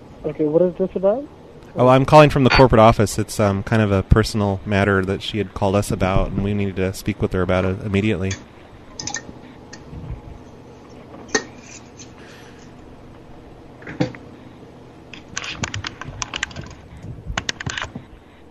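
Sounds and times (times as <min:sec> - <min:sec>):
speech: 0:00.2 - 0:09.2
loud typing on a computer keyboard: 0:17.4 - 0:18.0.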